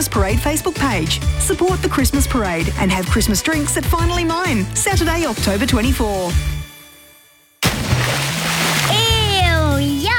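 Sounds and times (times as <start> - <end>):
speech: 0.0 - 6.6
person plunging into a pool: 7.6 - 9.2
pool water churning: 7.6 - 9.4.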